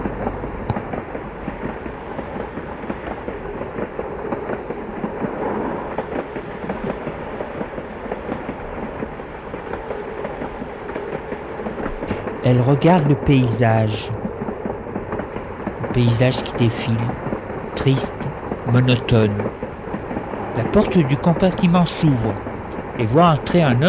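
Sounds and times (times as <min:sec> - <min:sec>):
train pulling out of a station, rumbling and clattering: 0:00.0 - 0:23.8
speech: 0:12.5 - 0:14.2, 0:16.0 - 0:18.1, 0:18.7 - 0:19.6, 0:20.6 - 0:23.8.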